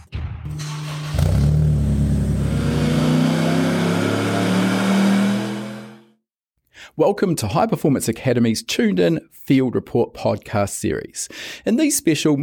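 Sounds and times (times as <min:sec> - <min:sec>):
engine of a car still being built revving hard: 0:00.5 - 0:06.1
speech: 0:07.0 - 0:12.4.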